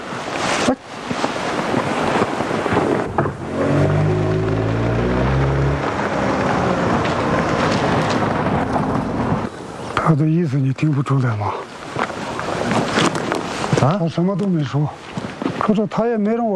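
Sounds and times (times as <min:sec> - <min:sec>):
road and wind noise from a car being driven: 0:00.0 - 0:16.5
car engine drone: 0:02.8 - 0:09.5
speech: 0:10.1 - 0:11.7, 0:13.8 - 0:15.1, 0:15.7 - 0:16.5.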